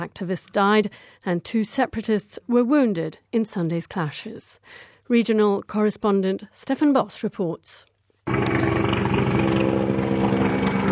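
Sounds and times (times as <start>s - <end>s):
speech: 0.0s - 9.3s
military helicopter rotor thumping overhead: 8.3s - 10.9s.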